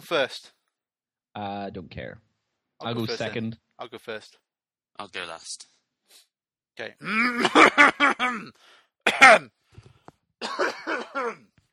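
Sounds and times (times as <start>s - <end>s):
speech: 0.0s - 0.6s, 1.4s - 4.4s, 5.0s - 9.6s, 10.4s - 11.5s
person clearing throat: 7.0s - 9.6s, 10.4s - 11.5s.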